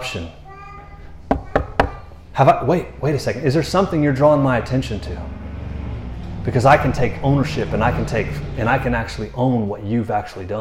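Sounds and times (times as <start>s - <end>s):
speech: 0.1s - 0.4s, 2.4s - 5.4s, 6.4s - 10.5s
solid knocking on a door: 1.3s - 2.0s.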